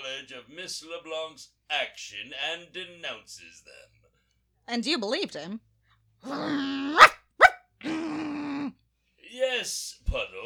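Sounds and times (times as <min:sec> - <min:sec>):
speech: 0:00.2 - 0:04.0, 0:04.7 - 0:07.1, 0:09.3 - 0:10.4
dog holding a low steady growl: 0:06.3 - 0:07.6
dog snapping out sharp barks: 0:07.0 - 0:07.6.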